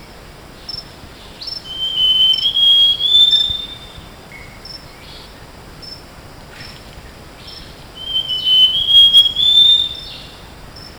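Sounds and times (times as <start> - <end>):
background hiss: 0.0 - 10.9
bird song in tropical Asia: 1.4 - 4.1, 8.0 - 10.4.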